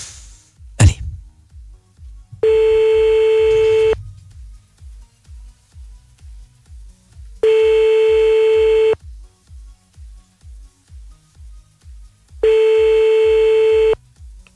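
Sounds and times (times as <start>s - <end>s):
faint rapid regular low ticking pulse: 2.3s - 4.7s, 7.4s - 9.0s, 12.4s - 14.0s
telephone ringing tones while a call is being placed: 2.4s - 4.0s, 7.4s - 9.0s, 12.4s - 14.0s.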